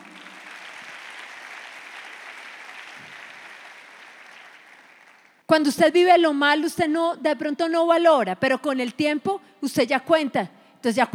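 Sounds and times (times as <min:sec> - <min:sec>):
church audience applauding: 0:00.0 - 0:05.4
speech: 0:05.5 - 0:11.1.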